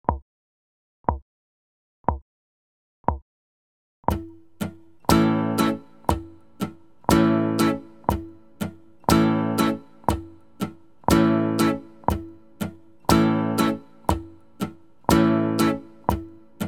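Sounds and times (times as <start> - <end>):
strummed instrumental music: 4.1 - 16.6.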